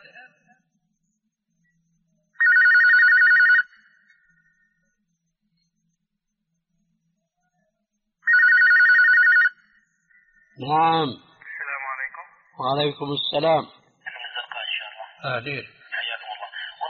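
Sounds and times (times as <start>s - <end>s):
warbling electronic telephone ringing for a call-in question: 2.4s - 3.8s, 8.3s - 9.6s
speech: 10.6s - 11.3s, 12.6s - 13.8s, 15.2s - 15.8s.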